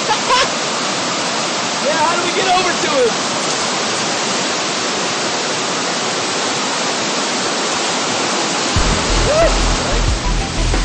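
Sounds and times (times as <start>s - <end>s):
rushing creek water: 0.0s - 10.8s
deep low rumble: 8.8s - 10.8s.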